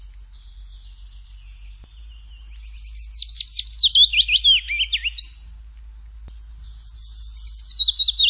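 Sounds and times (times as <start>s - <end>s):
willow warbler singing in a forest: 0.0s - 8.2s.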